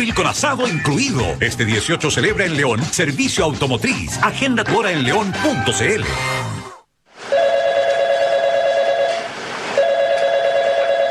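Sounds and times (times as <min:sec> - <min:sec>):
speech: 0:00.0 - 0:06.6
telephone with long steady electronic rings: 0:07.3 - 0:11.0.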